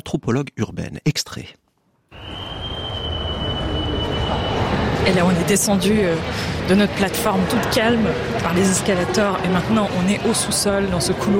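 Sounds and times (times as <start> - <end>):
speech: 0.1 - 1.6, 5.0 - 11.3
sustained high whine: 2.2 - 5.4
busy train station rumbling din: 2.2 - 6.2.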